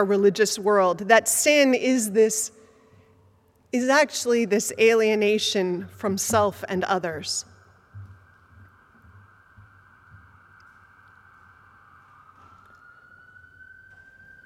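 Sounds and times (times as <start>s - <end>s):
speech: 0.0s - 2.6s, 3.7s - 7.5s
ambulance siren passing by: 7.7s - 14.4s.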